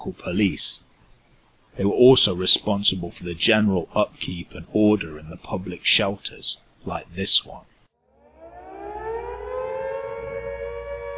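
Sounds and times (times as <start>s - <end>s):
speech: 0.0s - 0.8s, 1.8s - 7.7s
air raid siren wailing: 8.0s - 11.1s.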